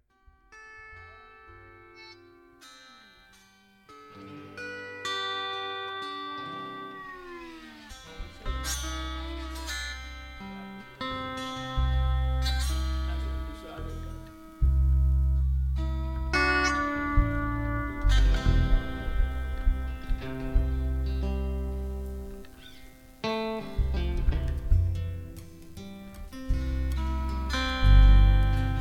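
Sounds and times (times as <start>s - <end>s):
lap steel guitar: 0.1s - 28.7s.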